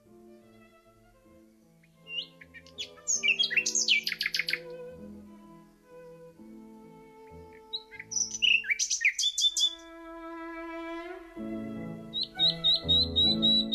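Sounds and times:
dozens of nightingales singing loudly beside a church in Amsterdam-Oost, Netherlands: 1.8s - 4.9s, 7.4s - 9.9s, 12.1s - 13.7s
live opera performance music: 2.1s - 13.7s.

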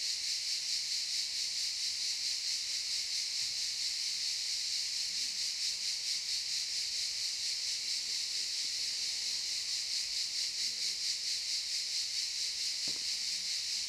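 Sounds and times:
cicadas buzzing in a pine forest at a campsite in Albinia, Tuscany, Italy: 0.0s - 13.8s.

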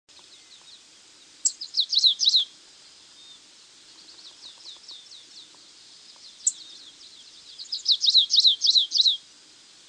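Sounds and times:
Stripe-tailed yellow finch Sicalis citrina citrina chips and twittering: 1.4s - 2.5s, 3.9s - 9.2s.

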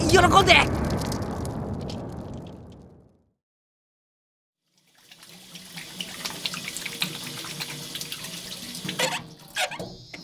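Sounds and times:
speech: 0.1s - 0.8s
water running from a tap into a sink while washing the face: 4.8s - 10.1s.

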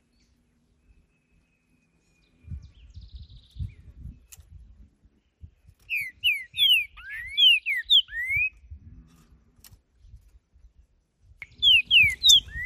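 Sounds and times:
green-winged saltator whistled song in nature: 5.9s - 8.5s, 11.4s - 12.6s.

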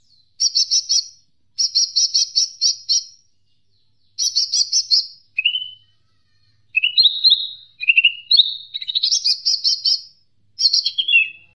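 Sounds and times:
leafbird singing: 0.0s - 11.5s.

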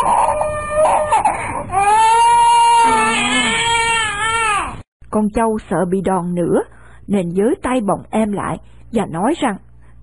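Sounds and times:
small child crying loudly: 0.0s - 4.8s
speech: 5.2s - 9.7s.

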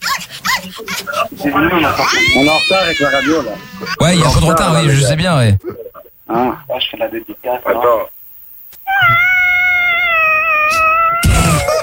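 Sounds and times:
speech: 0.6s - 8.2s
cat meowing: 1.7s - 4.0s, 8.9s - 11.4s.

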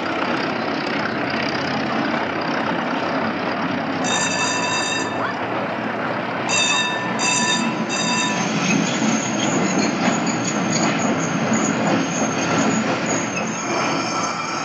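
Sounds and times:
tram rail rumble pulling in to a stop: 0.0s - 14.6s
high thin tram wheel squeal: 4.0s - 5.4s, 6.5s - 14.6s.

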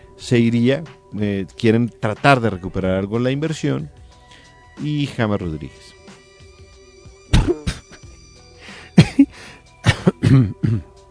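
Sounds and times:
speech: 0.2s - 4.0s, 4.8s - 6.0s, 10.3s - 10.9s
person coughing with harsh non-dry cough: 7.3s - 8.1s, 9.0s - 11.0s.

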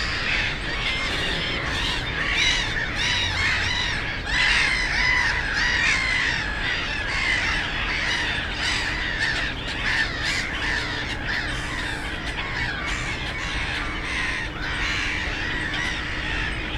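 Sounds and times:
low road hum from a nearby national road: 0.0s - 5.7s
black-headed gulls calling on ponds: 0.0s - 16.7s.

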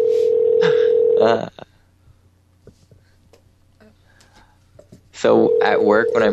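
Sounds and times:
electronic telephone ringing tone over the line: 0.0s - 1.2s, 5.3s - 6.3s
speech: 1.2s - 1.7s, 5.2s - 6.3s.

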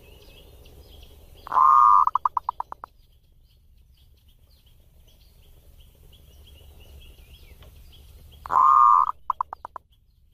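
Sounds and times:
zebra dove purring coo song: 1.5s - 2.8s, 8.5s - 9.8s.

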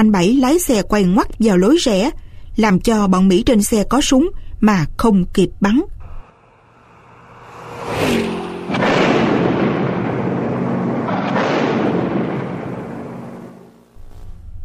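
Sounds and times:
speech: 0.0s - 5.9s
long roaring rumble after a mine blast: 6.0s - 13.8s
mine exploding under a car: 8.1s - 13.9s.

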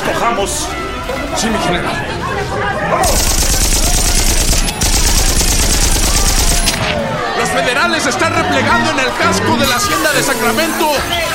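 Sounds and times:
speech: 0.3s - 3.7s, 6.9s - 11.3s
machine-gun fire in a Mexican Revolution battle near a hacienda: 3.0s - 7.0s
rifle volleys in a Mexican Revolution battle near a hacienda: 3.0s - 7.0s.

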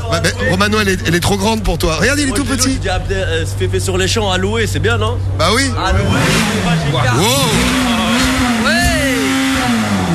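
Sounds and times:
Ferrari car engine revving: 0.0s - 10.1s
speech: 0.1s - 7.9s.

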